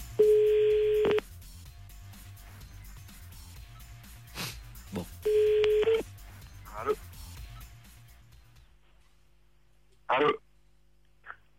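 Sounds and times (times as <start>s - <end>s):
telephone ringing tone of an outgoing call: 0.2s - 1.2s, 5.2s - 6.1s.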